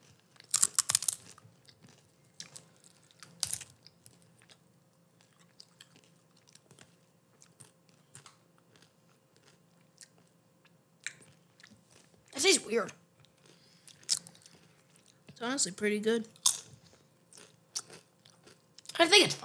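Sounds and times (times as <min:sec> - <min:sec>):
person chewing a bite of pantry food with sauce: 0:00.0 - 0:12.3, 0:13.2 - 0:15.4, 0:16.3 - 0:19.0
crunchy bites of pantry food: 0:00.4 - 0:04.2, 0:16.4 - 0:19.0
speech: 0:12.7 - 0:13.0, 0:15.4 - 0:16.4, 0:19.2 - 0:19.4.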